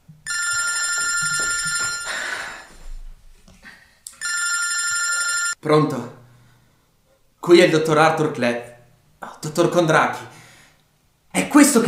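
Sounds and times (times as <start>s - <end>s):
telephone bell ringing with electronic trill: 0.2s - 2.3s, 4.2s - 5.6s
speech: 5.6s - 6.2s, 7.5s - 10.3s, 11.6s - 11.8s.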